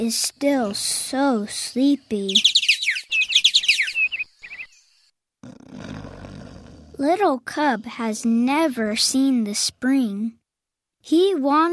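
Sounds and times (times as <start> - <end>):
speech: 0.0 - 2.6, 7.0 - 10.4, 11.0 - 11.7
birds twittering: 0.1 - 5.2.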